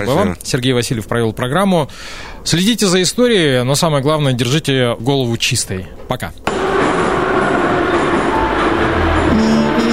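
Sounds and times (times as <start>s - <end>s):
speech: 0.0s - 6.5s
metro train rumbling at its terminal station: 6.5s - 9.9s.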